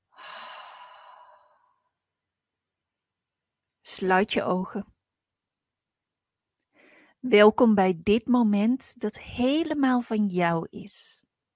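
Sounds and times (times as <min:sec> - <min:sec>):
deep breath in through the nose and out through the mouth: 0:00.0 - 0:02.0, 0:06.7 - 0:07.2
speech: 0:03.9 - 0:04.9, 0:07.2 - 0:11.3.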